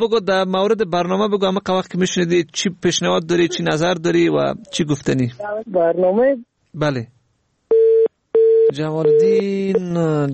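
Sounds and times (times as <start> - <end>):
speech: 0.0 - 7.2, 8.7 - 10.3
telephone busy tone after a dropped call: 7.7 - 9.8.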